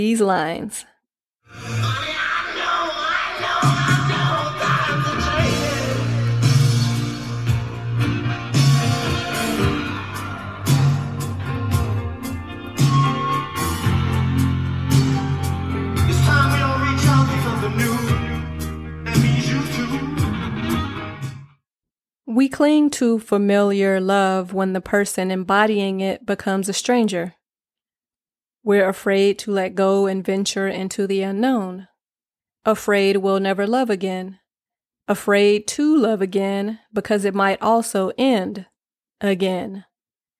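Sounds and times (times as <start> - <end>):
speech: 0.0 - 0.9, 22.3 - 27.4, 28.6 - 31.9, 32.6 - 34.4, 35.1 - 39.9
singer screaming and wailing at end of rock song: 1.6 - 6.1
loud dense rock music with driving guitars and drums: 3.3 - 21.4.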